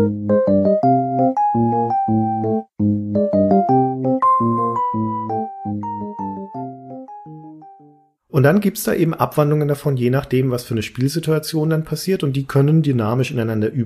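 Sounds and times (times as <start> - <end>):
calm video game theme music with bell-like chords and gentle melody: 0.0 - 8.2
speech: 8.4 - 13.8.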